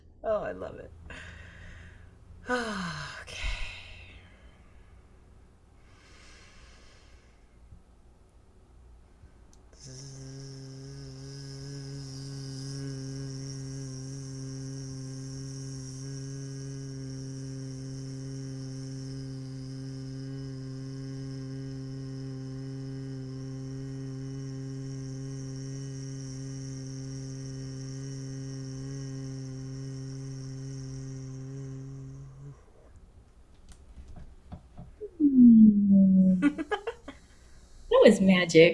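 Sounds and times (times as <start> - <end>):
speech: 0.2 - 1.2, 2.5 - 3.4, 38.1 - 38.7
person humming during a bee breath breathing exercise: 2.4 - 4.3, 9.8 - 32.9, 34.8 - 37.3.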